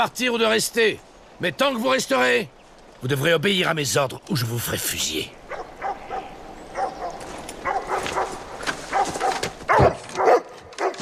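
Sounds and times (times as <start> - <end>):
speech: 0.0 - 5.4
several dogs barking and yipping: 5.5 - 11.0.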